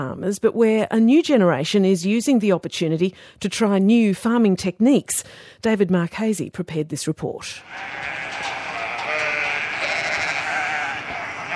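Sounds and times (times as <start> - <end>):
speech: 0.0 - 8.5
large flock of hungry sheep bleating on a farm: 7.6 - 11.5.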